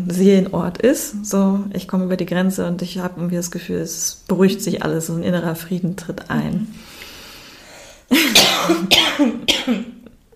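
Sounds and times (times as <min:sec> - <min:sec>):
speech: 0:00.0 - 0:06.9
person coughing harshly with a rough voiced rasp: 0:08.1 - 0:10.0.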